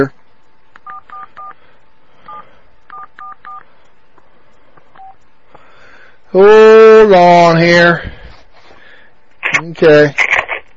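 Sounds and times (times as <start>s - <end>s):
short electronic telephone keypad tones: 0.8s - 1.6s, 2.3s - 3.6s
speech: 6.3s - 8.1s, 9.7s - 10.3s.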